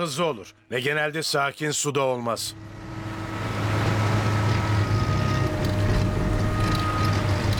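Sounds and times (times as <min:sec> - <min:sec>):
speech: 0:00.0 - 0:02.8
tugboat diesel engine droning with a clogged fuel filter: 0:02.4 - 0:07.5
hissing wind-like wash: 0:02.5 - 0:07.5.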